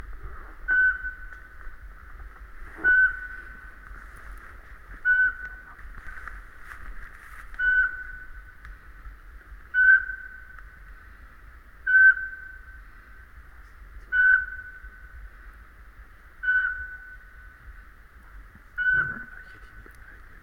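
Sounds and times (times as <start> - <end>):
Eurasian pygmy owl calling: 0.6 - 1.6, 2.7 - 3.8, 4.9 - 5.8, 7.5 - 8.6, 9.7 - 10.9, 11.8 - 13.2, 14.0 - 15.3, 16.4 - 17.8, 18.7 - 19.8.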